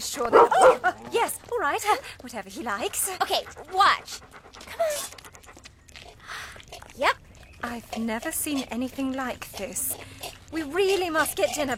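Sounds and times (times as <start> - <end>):
dog yipping and barking: 0.4 - 0.9
speech: 1.8 - 4.0, 8.0 - 10.0, 10.6 - 11.7.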